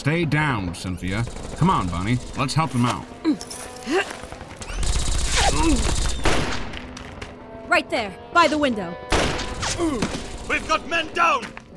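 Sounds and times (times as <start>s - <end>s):
speech: 0.0s - 4.4s, 5.5s - 6.1s, 7.7s - 9.1s, 9.8s - 11.6s
gunfire from a shootout at a house: 4.8s - 6.8s, 9.1s - 10.9s.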